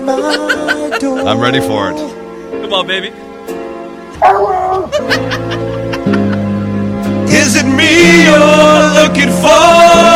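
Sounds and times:
laughter: 0.0 - 1.5, 4.7 - 6.6
steady music chords: 0.0 - 10.1
speech: 0.1 - 6.2, 7.4 - 10.1
dog yowling along with a song: 4.2 - 5.0.

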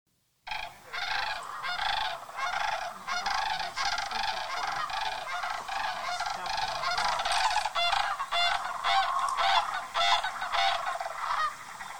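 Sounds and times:
large flock of sandhill cranes and snow geese calling: 0.5 - 11.9
people talking: 2.5 - 7.9.

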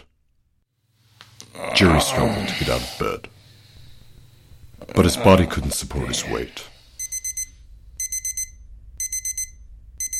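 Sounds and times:
faint low hum: 0.0 - 10.1
speech: 1.6 - 3.3, 4.9 - 6.7
alarm clock with shrill electronic beeps: 7.0 - 10.1.

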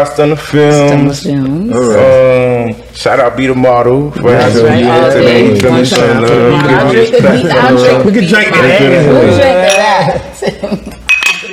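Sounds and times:
speech: 0.0 - 11.0
laughter: 9.2 - 11.1
glasses clinking together in a toast: 9.3 - 10.2, 11.0 - 11.5.

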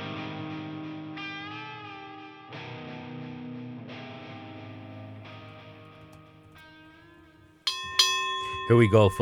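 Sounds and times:
boxing bell marking the start of a round in a boxing match: 7.7 - 9.2
speech: 8.7 - 9.2.

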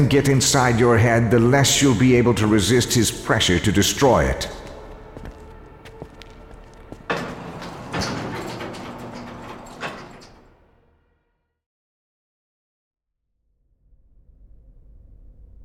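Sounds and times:
speech: 0.0 - 4.6
elevator doors sliding shut: 5.6 - 10.6.

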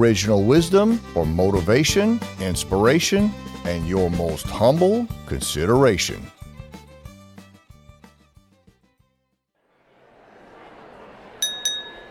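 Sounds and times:
speech: 0.0 - 6.4
crowd-like noise: 9.8 - 12.0
glasses clinking in a toast: 11.4 - 12.0
short tinkling musical phrase: 11.4 - 12.0.

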